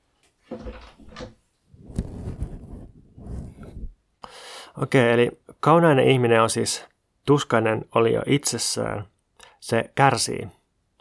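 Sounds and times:
speech: 0.5s - 1.3s, 4.8s - 10.6s
door creaking as it is worked open: 0.5s - 1.4s
handling noises scraping and rubbing: 0.5s - 4.0s.

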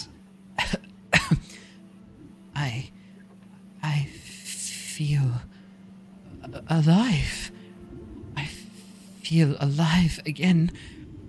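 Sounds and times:
faint steady hum: 0.0s - 11.2s
person weeping and coughing: 0.6s - 1.8s
speech: 5.0s - 5.5s, 6.7s - 7.4s, 9.3s - 11.0s.

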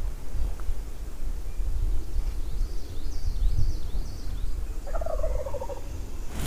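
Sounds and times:
faint chirping calls: 0.8s - 6.4s
wild turkey gobbling from a tree before daybreak: 4.8s - 6.0s.

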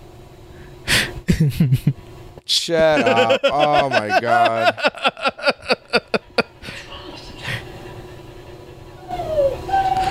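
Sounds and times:
speech: 1.3s - 5.8s
laughter: 2.8s - 6.6s
dog whimpering with high whining notes: 7.0s - 10.0s
dog yelping sharply: 9.0s - 10.0s.

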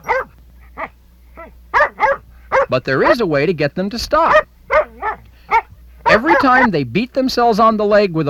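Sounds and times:
dog barking: 0.0s - 3.2s, 4.3s - 6.7s
speech: 2.7s - 4.5s, 6.1s - 8.2s.

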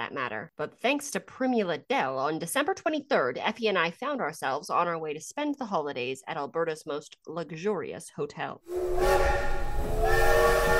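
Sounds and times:
speech: 0.1s - 10.7s
steam train whistle blowing a steady chord: 8.7s - 10.7s.

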